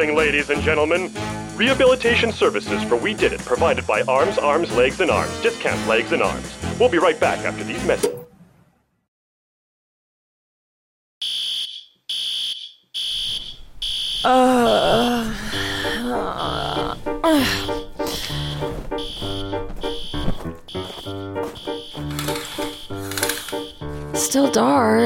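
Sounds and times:
speech: 0:00.0 - 0:08.3, 0:14.2 - 0:14.5, 0:24.2 - 0:25.0
electronic alarm beeping: 0:11.2 - 0:15.0, 0:17.6 - 0:23.9
person groaning and gasping: 0:14.3 - 0:18.4.

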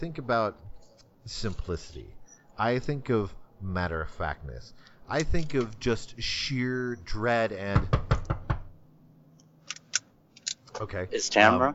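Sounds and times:
speech: 0:00.0 - 0:08.1, 0:10.8 - 0:11.7
knocking on a door: 0:07.7 - 0:08.7.

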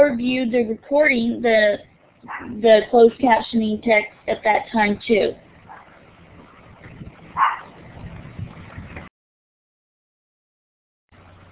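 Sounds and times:
speech: 0:00.0 - 0:05.4
dog barking: 0:02.3 - 0:02.6, 0:05.7 - 0:06.0, 0:07.4 - 0:07.8.

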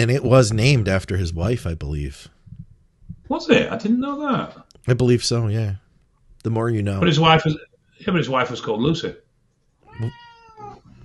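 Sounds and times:
speech: 0:00.0 - 0:02.4, 0:03.3 - 0:05.8, 0:06.4 - 0:09.2, 0:10.0 - 0:10.2
cat meowing: 0:09.9 - 0:10.9.

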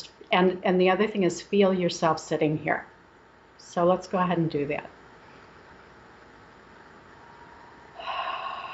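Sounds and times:
speech: 0:00.0 - 0:02.9, 0:03.7 - 0:05.0
deep breath in: 0:08.0 - 0:08.7.

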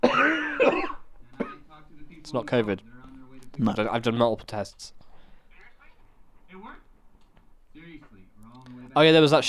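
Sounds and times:
person coughing with a rough voiced hack: 0:00.0 - 0:01.7
speech: 0:02.3 - 0:03.0, 0:03.6 - 0:05.0, 0:09.0 - 0:09.4.

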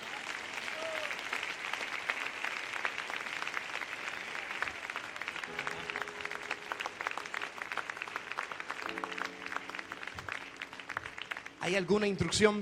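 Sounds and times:
audience applauding: 0:00.0 - 0:12.6
faint sustained musical tones: 0:05.5 - 0:12.1
speech: 0:11.7 - 0:12.6.

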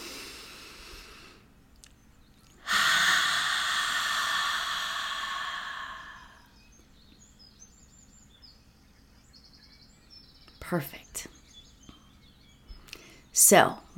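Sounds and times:
deep breath in through the nose and out through the mouth: 0:00.0 - 0:01.5, 0:02.6 - 0:06.7
speech: 0:10.7 - 0:11.3, 0:13.5 - 0:13.8.

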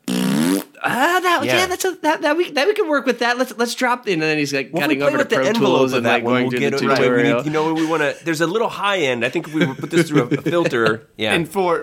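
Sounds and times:
fart noise sound effect: 0:00.0 - 0:00.8
speech: 0:00.8 - 0:11.8
laughter: 0:05.0 - 0:08.5, 0:09.2 - 0:11.1.

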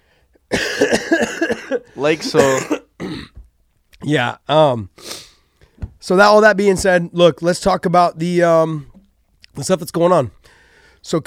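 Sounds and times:
loud throat clearing with rough voiced rasps: 0:00.5 - 0:03.4
short sharp cough: 0:00.5 - 0:03.4
speech: 0:01.2 - 0:02.8, 0:04.1 - 0:05.1, 0:06.0 - 0:08.9, 0:09.6 - 0:10.4, 0:11.0 - 0:11.2.

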